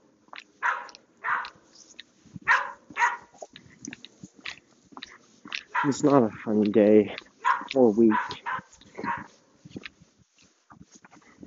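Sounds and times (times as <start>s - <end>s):
dogs barking: 0.3s - 1.7s, 2.5s - 3.6s, 5.0s - 6.4s, 7.1s - 9.4s
dogs yipping and snapping: 0.3s - 6.2s, 7.1s - 10.0s
speech: 5.8s - 8.4s.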